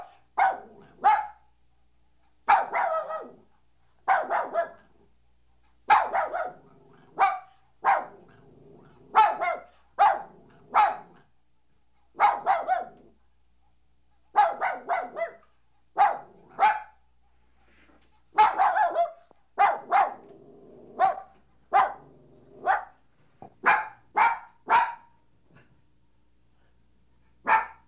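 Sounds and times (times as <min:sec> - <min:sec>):
puppy barking: 0:00.0 - 0:01.4, 0:02.4 - 0:04.9, 0:05.9 - 0:08.3, 0:09.1 - 0:11.3, 0:12.1 - 0:13.1, 0:14.3 - 0:17.0, 0:18.3 - 0:20.3, 0:21.0 - 0:25.2, 0:27.4 - 0:27.8.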